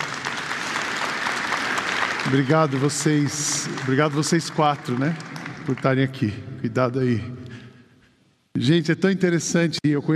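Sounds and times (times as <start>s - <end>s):
audience applause: 0.0s - 6.3s
speech: 2.3s - 7.4s, 8.6s - 10.1s.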